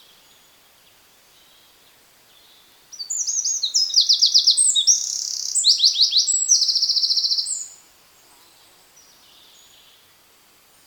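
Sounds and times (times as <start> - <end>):
Eurasian wren Troglodytes troglodytes singing high song of tinkling notes and trills: 2.9 - 7.8.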